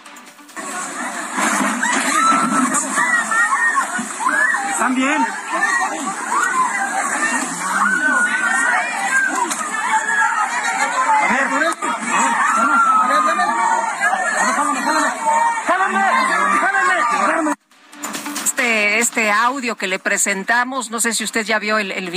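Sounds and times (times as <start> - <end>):
crowd screaming and shouting as a suspension bridge collapses: 0.6 - 17.6
speech: 4.8 - 6.4, 19.2 - 22.1.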